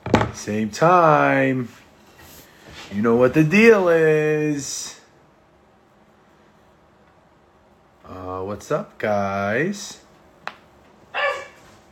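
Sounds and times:
speech: 0:00.4 - 0:01.8, 0:02.9 - 0:05.0, 0:08.1 - 0:10.0
short sharp yelp: 0:11.1 - 0:11.6
single loud dog bark: 0:11.1 - 0:11.6.

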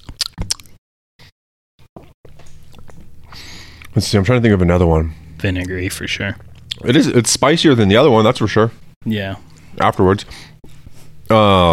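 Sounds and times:
chewing and biting food near microphone: 0:00.0 - 0:00.8, 0:02.3 - 0:04.0, 0:06.4 - 0:06.9
speech: 0:04.0 - 0:10.5, 0:11.3 - 0:11.7.

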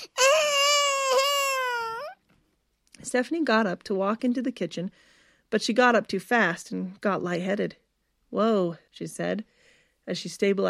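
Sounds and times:
baby fussing in a high chair: 0:00.0 - 0:02.2
speech: 0:03.1 - 0:10.6.

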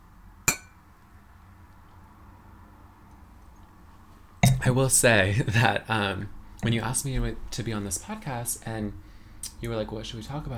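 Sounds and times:
low quiet hum: 0:00.0 - 0:10.5
glasses clinking in a toast: 0:00.5 - 0:00.8
speech: 0:04.6 - 0:10.5.

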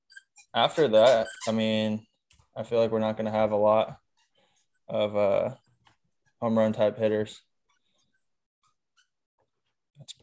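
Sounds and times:
squeaky toy squeaking as a dog chews it: 0:00.1 - 0:01.9
speech: 0:00.5 - 0:04.0, 0:04.9 - 0:05.6, 0:06.4 - 0:07.5, 0:10.0 - 0:10.2.

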